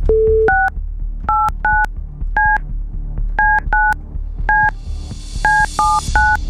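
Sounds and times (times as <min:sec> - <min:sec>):
telephone keypad dual-tone beeps: 0:00.1 - 0:02.6, 0:03.4 - 0:04.0, 0:04.5 - 0:04.7, 0:05.4 - 0:06.4.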